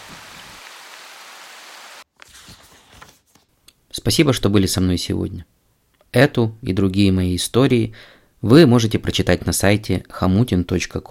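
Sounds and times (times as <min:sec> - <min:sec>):
steady dense rain hissing: 0:00.0 - 0:02.1
speech: 0:04.0 - 0:11.0.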